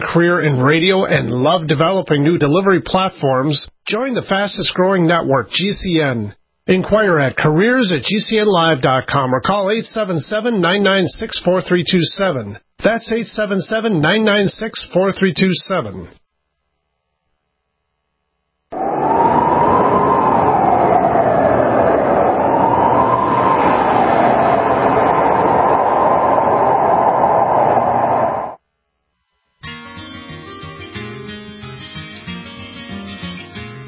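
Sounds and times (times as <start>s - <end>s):
speech: 0.0s - 16.2s
wavering high whine from a train: 18.7s - 28.6s
train rolling along the rails: 18.8s - 28.6s
music: 29.4s - 33.8s.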